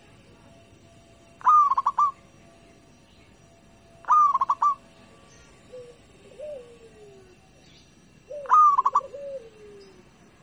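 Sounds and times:
local-type zebra dove cooing: 1.4 - 2.2, 4.0 - 7.6, 8.2 - 10.3.

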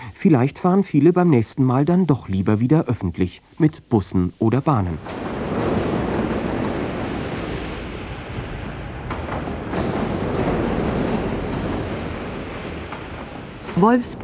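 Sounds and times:
speech: 0.1 - 5.3, 13.8 - 14.2
railway wagons rumbling at a busy car loading ramp at a car plant: 4.5 - 14.2.

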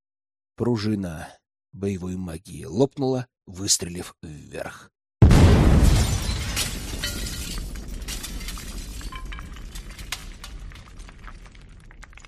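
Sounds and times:
speech: 0.6 - 5.0
glass shattering and falling from a ceiling: 5.8 - 12.2
glass fragments tinkling and clinking: 6.2 - 11.0.

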